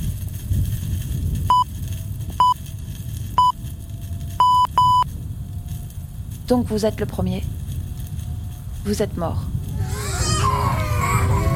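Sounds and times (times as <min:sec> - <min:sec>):
steady low rumbling background: 0:00.0 - 0:11.5
short clear electronic beeps: 0:04.4 - 0:05.0
speech: 0:06.5 - 0:07.6, 0:08.8 - 0:09.6.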